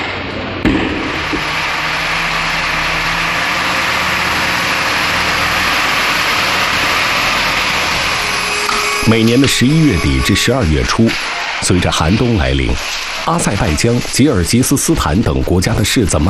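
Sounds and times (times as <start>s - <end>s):
sharp knock: 0.0s - 1.7s
loaded heavy truck engine rumbling: 0.0s - 16.2s
speech: 9.1s - 16.2s.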